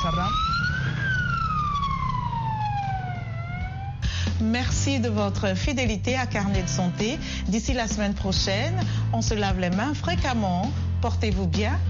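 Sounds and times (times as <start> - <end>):
ambulance siren wailing: 0.0 - 4.1
low engine rumble: 0.0 - 6.0
speech: 0.1 - 0.7, 4.4 - 11.8.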